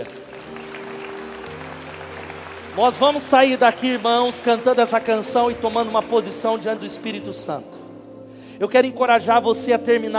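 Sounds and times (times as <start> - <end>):
audience applauding: 0.0 - 7.3
speech: 2.8 - 7.8, 8.6 - 10.1.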